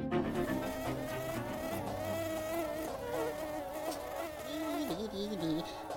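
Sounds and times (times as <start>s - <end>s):
mosquito buzzing: 0.2s - 5.6s.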